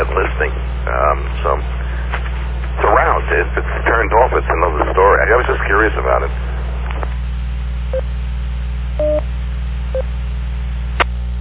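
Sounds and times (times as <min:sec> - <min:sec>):
steady low hum and hiss: 0:00.0 - 0:11.4
DTMF touch-tone beeps on an EchoLink radio link: 0:09.0 - 0:09.2.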